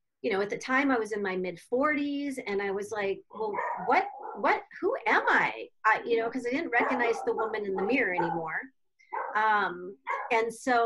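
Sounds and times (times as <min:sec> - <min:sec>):
speech: 0:00.2 - 0:10.8
dogs barking and yipping at home: 0:03.4 - 0:04.6, 0:06.6 - 0:09.4, 0:10.1 - 0:10.4.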